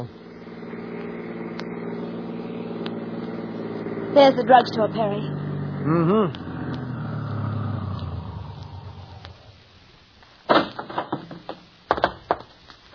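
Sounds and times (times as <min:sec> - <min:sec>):
police car engine rumbling as it pulls up and stops in a town: 0:00.0 - 0:10.2
speech: 0:04.2 - 0:06.4
sharp clunks and knocks: 0:10.5 - 0:12.9.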